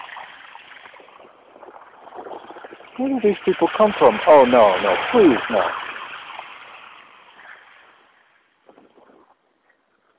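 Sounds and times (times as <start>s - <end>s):
line of cars passing on wet street: 2.9s - 8.4s
speech: 3.0s - 5.8s.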